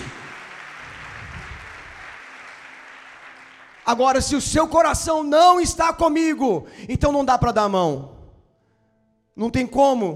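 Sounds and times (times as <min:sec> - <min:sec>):
audience applauding in a large room: 0:00.0 - 0:04.8
speech: 0:03.9 - 0:08.2, 0:09.4 - 0:10.1.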